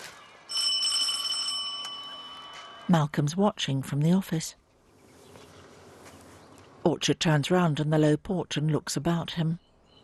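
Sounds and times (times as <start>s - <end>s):
cottage doorbell ringing: 0.5s - 3.1s
speech: 2.9s - 4.6s, 6.8s - 9.6s.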